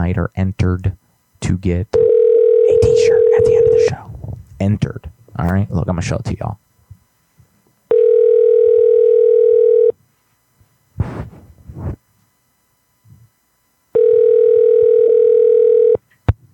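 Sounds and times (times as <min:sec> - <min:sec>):
speech: 0:00.0 - 0:02.0, 0:04.6 - 0:06.6
electronic phone ring tone through the line: 0:02.0 - 0:03.9, 0:07.9 - 0:10.0, 0:14.0 - 0:16.0
rustle: 0:10.2 - 0:12.0.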